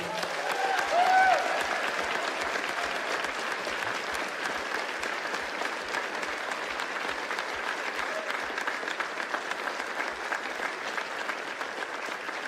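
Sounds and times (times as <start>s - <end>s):
church audience cheering: 0.0s - 3.8s
large church audience applauding: 0.0s - 12.4s.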